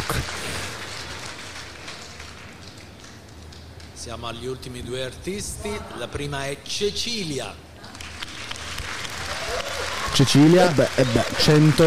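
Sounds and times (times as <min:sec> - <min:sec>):
audience applause: 0:00.0 - 0:03.8, 0:07.9 - 0:11.8
speech: 0:04.0 - 0:07.6, 0:10.2 - 0:11.8.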